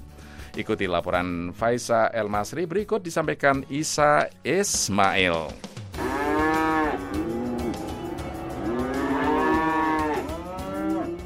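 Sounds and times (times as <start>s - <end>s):
speech: 0.5s - 5.7s
several cows mooing in drawn-out calls: 6.0s - 11.2s.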